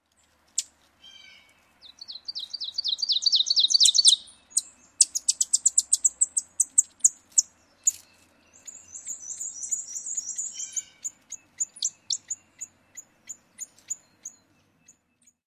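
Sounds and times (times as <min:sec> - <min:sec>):
ovenbird song: 0:00.0 - 0:15.4.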